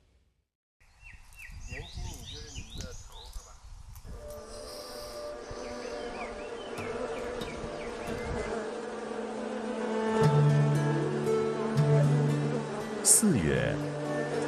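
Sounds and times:
swarm of honeybees buzzing in lychee orchard: 4.3 - 14.4.

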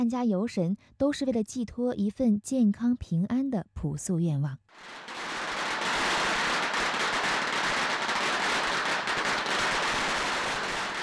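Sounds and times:
speech: 0.0 - 5.2
long string of firecrackers bursting in Dongmen village for a deity-welcoming procession: 4.7 - 11.0.

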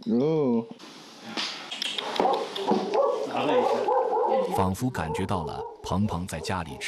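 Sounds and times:
speech: 0.0 - 1.4, 4.6 - 6.8
dogs yelping and barking outside a door at a pasture: 2.2 - 6.8.

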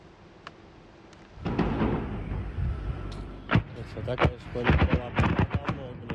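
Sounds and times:
rumbling background: 1.3 - 6.1
heavy explosions from drone strikes on a logistics warehouse: 1.4 - 6.1
voices: 2.6 - 6.1.

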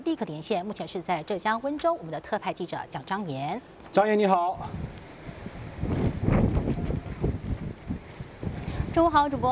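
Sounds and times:
speech: 0.1 - 5.0, 9.0 - 9.5
strong gusty wind from an approaching typhoon on the coast of Wenzhou, Zhejiang: 4.5 - 9.5.

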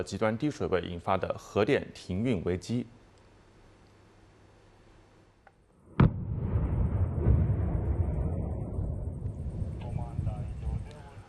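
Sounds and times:
speech: 0.0 - 3.0
controlled blast in canal water: 5.9 - 10.1.

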